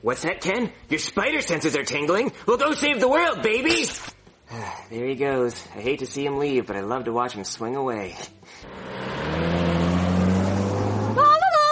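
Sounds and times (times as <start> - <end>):
speech: 0.0 - 9.6
car engine droning as the car drives along: 8.6 - 11.3.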